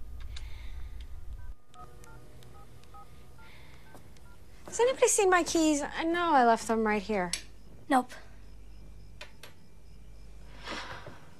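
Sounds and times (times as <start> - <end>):
low hum: 0.0 - 11.3
mobile phone keypad beeps as a number is dialed: 1.4 - 4.4
speech: 4.7 - 8.2.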